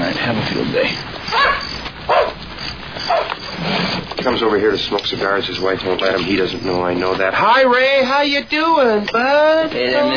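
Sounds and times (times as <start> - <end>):
speech: 0.5 - 1.4, 4.2 - 10.1
dog barking on a lawn: 1.2 - 3.6.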